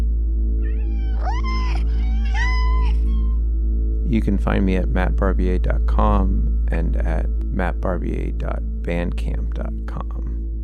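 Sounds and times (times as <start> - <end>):
cat meowing: 0.6 - 3.4
speech: 4.1 - 10.3.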